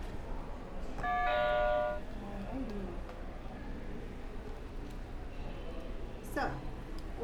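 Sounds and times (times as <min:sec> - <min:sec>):
steady low hum: 0:00.0 - 0:07.2
electronic bell chime after a button press: 0:01.0 - 0:02.0.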